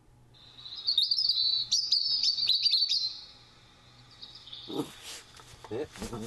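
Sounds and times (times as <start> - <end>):
European robin singing: 0.4 - 5.0
speech: 5.7 - 6.2.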